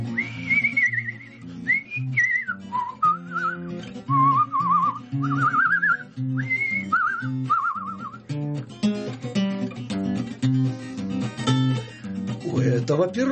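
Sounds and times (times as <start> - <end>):
person whistling a warbling tune to call horses to water: 0.0 - 8.3
steady instrumental music: 0.0 - 13.3
speech: 12.9 - 13.3.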